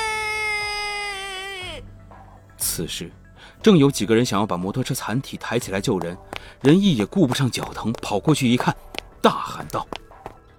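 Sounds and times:
boy sitting on the ground crying: 0:00.0 - 0:01.8
speech: 0:02.8 - 0:10.0.

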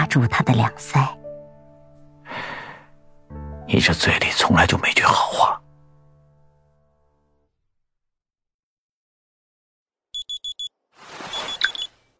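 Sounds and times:
speech: 0:00.1 - 0:01.2, 0:03.7 - 0:05.6
phone alarm clock high-pitched beeps in the morning: 0:10.2 - 0:10.7.

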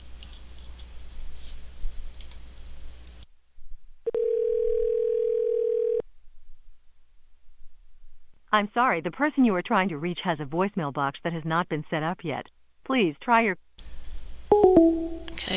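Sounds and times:
low noise: 0:00.0 - 0:15.5
telephone ringing tone while redialing a call: 0:04.1 - 0:06.0
speech: 0:08.5 - 0:13.6.

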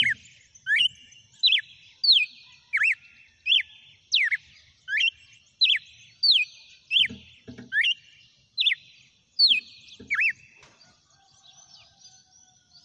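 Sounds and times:
female red-cowled cardinal song of curling whistled notes: 0:00.0 - 0:10.7.

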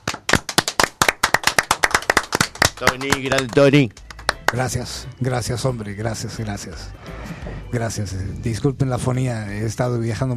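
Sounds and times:
audience applause greeting a guest on a televised show: 0:00.0 - 0:04.6
speech: 0:02.8 - 0:10.3.

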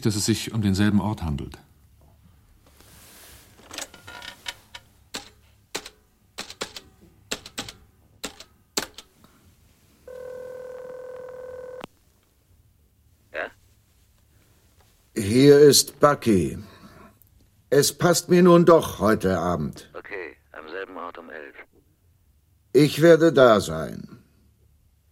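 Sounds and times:
speech: 0:00.0 - 0:01.7, 0:15.4 - 0:16.7, 0:17.7 - 0:20.0, 0:22.8 - 0:24.1
telephone handset and dialing clicks and clacks: 0:03.6 - 0:09.1.

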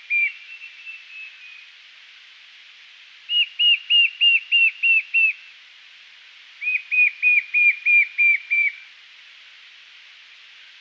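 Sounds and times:
white-shouldered fire-eye song of short clear whistled notes: 0:00.1 - 0:01.7, 0:03.3 - 0:05.4, 0:06.6 - 0:08.8.

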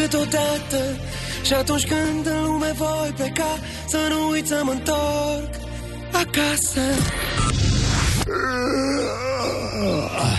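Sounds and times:
speech: 0:00.0 - 0:07.6, 0:08.3 - 0:10.3
long voiced groaning yawn: 0:08.3 - 0:10.3.

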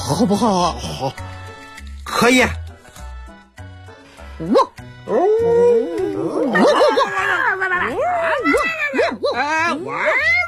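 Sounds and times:
speech: 0:00.1 - 0:01.3, 0:02.2 - 0:02.6, 0:04.4 - 0:10.4
person imitating a wolf howling urgently: 0:05.1 - 0:08.6.

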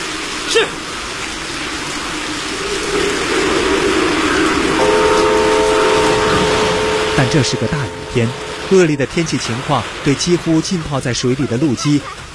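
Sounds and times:
speech: 0:00.5 - 0:00.9, 0:07.2 - 0:12.2
train rumbling on a test run over a repaired railway section on a rainy day: 0:00.8 - 0:12.3
train horn or whistle: 0:04.8 - 0:10.0.

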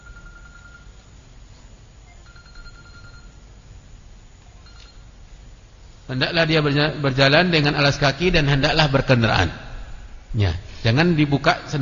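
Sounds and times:
mobile phone ringtone: 0:00.0 - 0:00.9, 0:02.1 - 0:03.4, 0:04.6 - 0:05.1
low steady hum: 0:00.0 - 0:11.8
speech: 0:06.1 - 0:09.6, 0:10.3 - 0:11.8.

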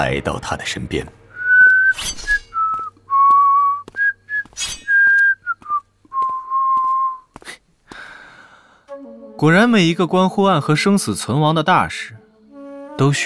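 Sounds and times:
speech: 0:00.0 - 0:01.2, 0:01.9 - 0:02.3, 0:09.4 - 0:12.2, 0:13.0 - 0:13.2
man whistling a casual leisurely tune: 0:01.4 - 0:07.3
quick audible breaths between whistled phrases: 0:07.4 - 0:08.9.

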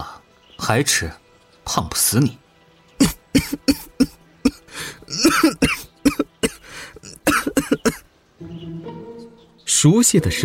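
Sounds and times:
speech: 0:00.7 - 0:02.4, 0:05.2 - 0:05.8, 0:09.8 - 0:10.4
person coughing after choking on soy milk: 0:03.0 - 0:08.1.

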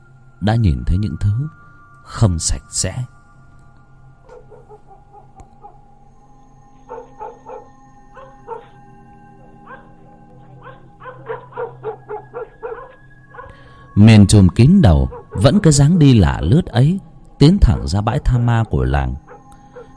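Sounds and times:
faint steady hum: 0:00.0 - 0:19.9
speech: 0:00.4 - 0:03.2, 0:14.0 - 0:19.2
village dogs barking in the countryside: 0:04.2 - 0:06.0, 0:06.7 - 0:13.9, 0:14.9 - 0:15.9, 0:19.2 - 0:19.9.

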